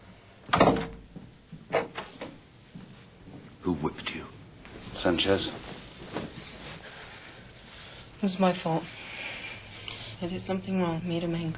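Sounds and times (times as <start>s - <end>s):
door thudding shut: 0.5s - 2.0s
speech: 3.6s - 4.4s, 5.0s - 5.8s, 8.2s - 9.0s, 10.2s - 11.5s.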